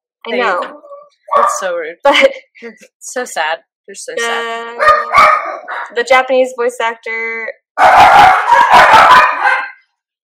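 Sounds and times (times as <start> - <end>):
speech: 0.2 - 9.3
pet dog barking loudly and aggressively: 1.3 - 1.6, 4.8 - 5.9, 7.8 - 9.8.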